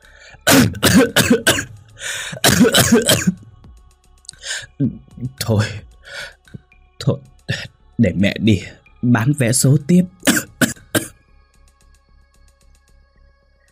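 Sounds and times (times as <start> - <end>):
old woman coughing violently, acted by a voice: 0.4 - 3.4, 10.2 - 11.1
speech: 0.9 - 3.4, 4.8 - 6.3, 7.1 - 10.4
rasping breaths: 2.0 - 2.4, 4.3 - 4.8, 5.6 - 6.6.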